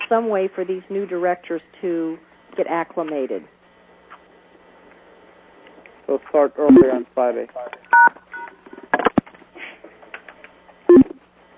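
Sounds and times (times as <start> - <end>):
speech: 0.1 - 3.6, 6.1 - 8.2
touch-tone phone keypad beeps: 6.7 - 7.0, 7.9 - 8.5, 10.9 - 11.1.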